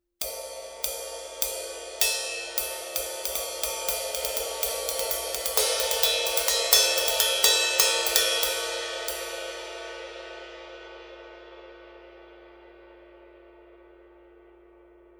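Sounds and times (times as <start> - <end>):
20 inch AA medium ride cymbal: 0.2 - 10.7.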